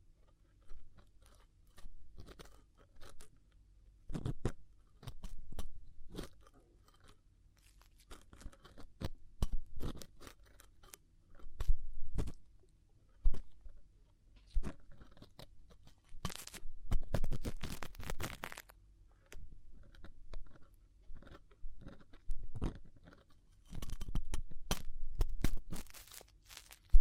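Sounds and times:
faint low hum: 0.0 - 27.0
ear cleaning dry scratching and crackling scrapes: 6.1 - 12.4, 14.6 - 18.7, 20.0 - 27.0.

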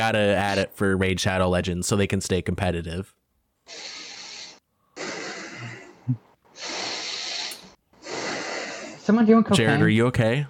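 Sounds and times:
speech: 0.0 - 4.0, 6.1 - 6.8, 9.1 - 10.4
heavy forceful breathing: 3.6 - 9.2
snort: 3.6 - 9.2.

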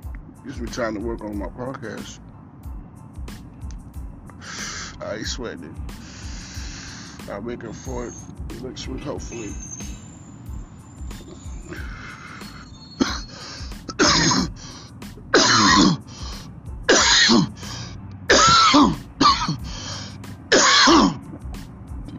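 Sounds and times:
speech: 0.4 - 2.3, 5.0 - 6.0, 7.3 - 9.7
hard coughing fit: 13.0 - 14.6, 15.3 - 16.1, 16.9 - 17.6, 18.3 - 19.7, 20.5 - 21.3.

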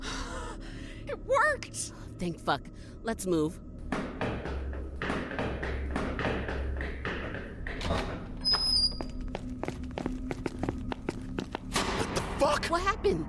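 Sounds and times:
speech: 1.1 - 3.7, 12.5 - 13.2
hurried footsteps thudding: 3.8 - 11.8.

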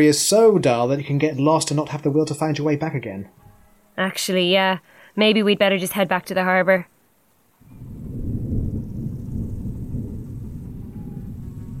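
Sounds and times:
speech: 0.0 - 3.4, 4.0 - 6.9
thunder rumbling: 7.6 - 11.7.

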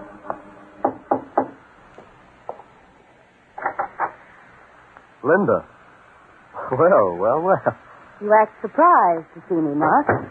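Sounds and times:
young woman knocking on the wooden door of an artist's studio in Greenwich Village, New York: 0.8 - 1.6
speech: 5.2 - 5.8, 6.7 - 10.3.

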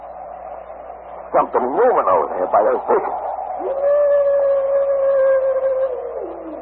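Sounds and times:
speech: 1.3 - 4.2
wolf howling: 2.0 - 6.5.

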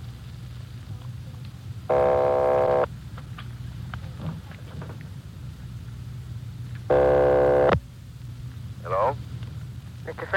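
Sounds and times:
loud buzzing telephone ringback tones: 1.9 - 2.9, 6.9 - 7.8.

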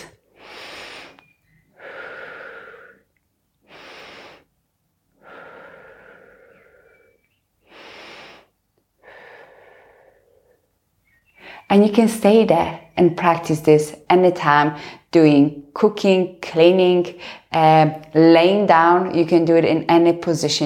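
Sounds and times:
slow breathing in through the nose and out through the mouth: 0.0 - 11.7
speech: 11.7 - 20.6.

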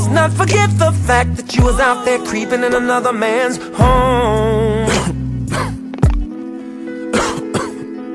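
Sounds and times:
speech: 0.1 - 4.9
harsh hacking coughs: 4.9 - 5.9, 7.1 - 7.9.

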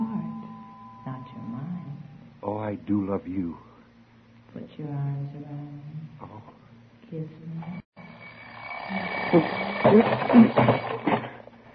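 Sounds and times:
speech: 2.7 - 3.7, 4.6 - 6.5, 7.1 - 7.8, 8.9 - 10.8
alarm clock ringing with tinny rattle: 8.0 - 11.7.

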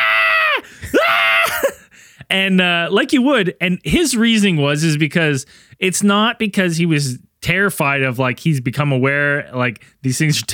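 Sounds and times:
man wailing and screaming uncontrollably: 0.0 - 1.8
man sobbing: 0.0 - 2.3
man gasping: 0.6 - 2.3, 5.5 - 5.8
speech: 2.3 - 10.5.

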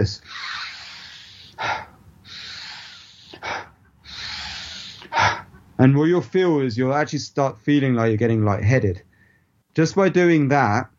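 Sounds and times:
person doing a breathing exercise: 0.0 - 5.8
speech: 5.8 - 9.1, 9.8 - 10.9.

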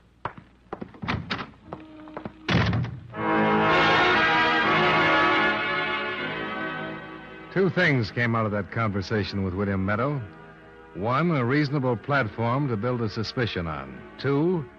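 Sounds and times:
solid thud of a door shutting: 1.0 - 1.6, 2.5 - 3.1
sustained music: 3.1 - 14.7
speech: 7.6 - 14.7.

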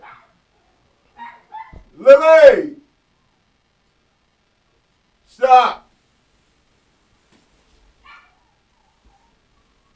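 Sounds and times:
dog yipping: 0.0 - 0.4, 1.2 - 1.9, 8.0 - 9.4
dog barking at another dog being walked past: 0.0 - 2.5, 8.0 - 9.4
speech: 2.0 - 2.8, 5.4 - 5.8.

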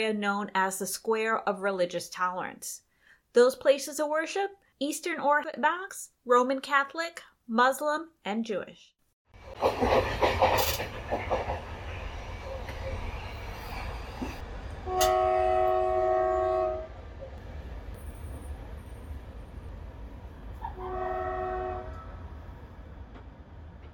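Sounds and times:
speech: 0.0 - 8.9, 14.9 - 15.4
overnight train from Istanbul to Sofia rumbling past: 9.3 - 23.9
train horn blasts: 14.8 - 17.0, 20.6 - 22.2.

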